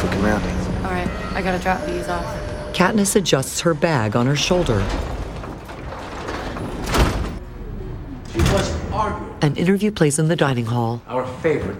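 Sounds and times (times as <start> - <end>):
elevator doors thudding: 0.0 - 7.4
elevator doors sliding as people board: 0.0 - 8.8
speech: 0.2 - 5.2, 9.4 - 11.7.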